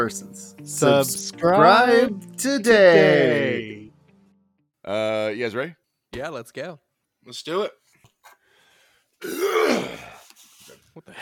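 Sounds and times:
speech: 0:00.0 - 0:03.8, 0:04.8 - 0:07.8, 0:09.2 - 0:10.1, 0:11.0 - 0:11.1
person clearing throat: 0:09.2 - 0:10.2.

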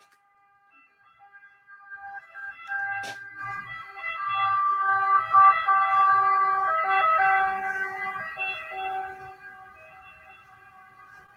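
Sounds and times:
ambulance siren wailing as it passes: 0:00.0 - 0:11.3
faint low rumble of traffic: 0:02.5 - 0:11.3.

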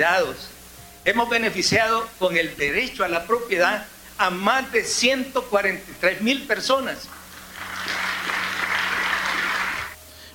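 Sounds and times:
speech: 0:00.0 - 0:07.2
audience applause: 0:07.1 - 0:10.0.

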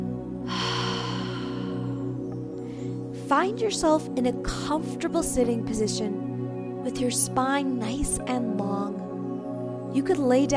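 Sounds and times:
soft sustained musical drone: 0:00.0 - 0:10.4
breathing during a guided relaxation exercise: 0:00.5 - 0:03.1
speech: 0:03.3 - 0:09.0, 0:10.0 - 0:10.5.

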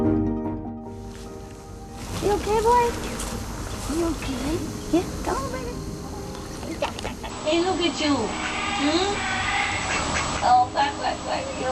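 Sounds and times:
steady hiss: 0:00.9 - 0:11.7
speech: 0:04.0 - 0:06.0, 0:07.5 - 0:09.4, 0:10.4 - 0:11.7
duck quacking: 0:08.3 - 0:10.7.

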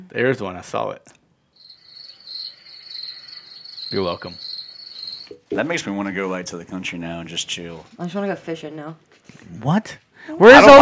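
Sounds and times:
speech: 0:00.1 - 0:01.2, 0:03.9 - 0:04.5, 0:05.3 - 0:10.8
crickets chirping: 0:01.6 - 0:05.5.

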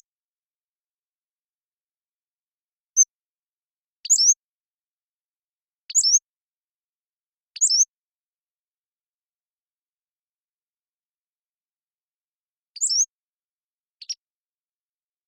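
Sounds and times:
Pacific-slope flycatcher Empidonax difficilis song: 0:04.0 - 0:04.5, 0:05.8 - 0:06.3, 0:07.5 - 0:08.0, 0:12.6 - 0:13.2, 0:13.9 - 0:14.4.

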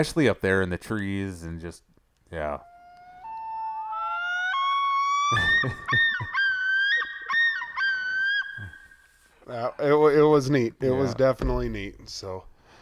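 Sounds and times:
speech: 0:00.0 - 0:02.7, 0:05.3 - 0:06.1, 0:09.5 - 0:12.5
loons calling with wails and tremolo calls: 0:02.6 - 0:09.5
laughter: 0:05.3 - 0:08.0.

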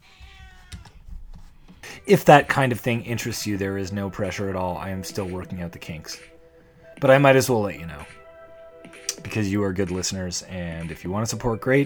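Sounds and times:
cat meowing: 0:00.0 - 0:01.2
speech: 0:02.1 - 0:06.3, 0:07.0 - 0:08.2, 0:09.2 - 0:11.8.

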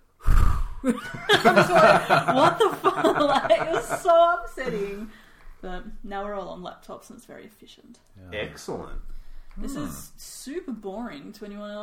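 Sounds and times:
voice imitating heavy breathing: 0:00.2 - 0:00.9
speech: 0:00.8 - 0:11.8
laughter: 0:00.9 - 0:05.1.

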